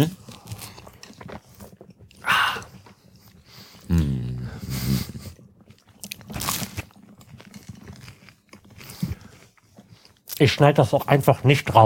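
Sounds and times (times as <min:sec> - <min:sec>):
people chewing and biting food while eating: 0:00.0 - 0:04.0, 0:04.6 - 0:10.7
person murmuring: 0:03.9 - 0:05.1
speech: 0:10.4 - 0:11.8.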